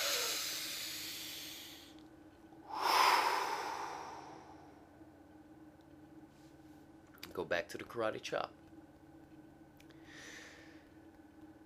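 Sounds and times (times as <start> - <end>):
deep breath: 0.0 - 2.0, 2.6 - 4.9, 10.0 - 10.9
speech: 7.4 - 8.6.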